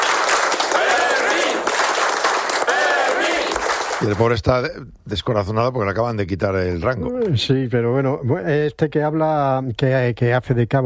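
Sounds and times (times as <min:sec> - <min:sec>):
crowd applauding: 0:00.0 - 0:04.4
speech: 0:04.0 - 0:10.8.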